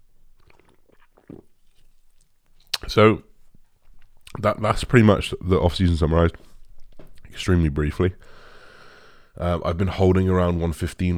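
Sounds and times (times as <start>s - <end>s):
slightly louder gulp: 0.4s - 1.6s
person sipping a fizzy drink: 0.4s - 2.0s
speech: 2.9s - 3.3s, 4.4s - 6.4s, 7.4s - 8.4s, 9.4s - 11.1s.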